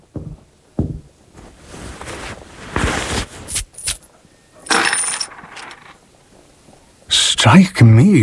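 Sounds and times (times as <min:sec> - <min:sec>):
handful of gold coins jingling onto a hard counter: 0:03.6 - 0:06.0
speech: 0:07.4 - 0:08.2.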